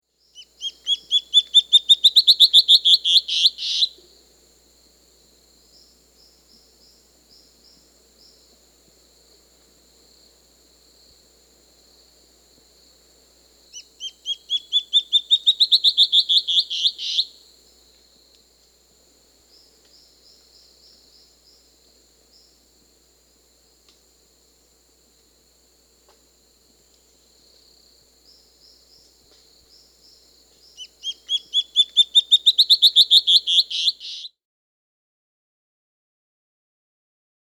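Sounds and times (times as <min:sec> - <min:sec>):
Band-tailed Antbird Hypocnemoides maculicauda calling in Peru: 0:00.4 - 0:04.0, 0:13.7 - 0:17.3, 0:30.6 - 0:34.3.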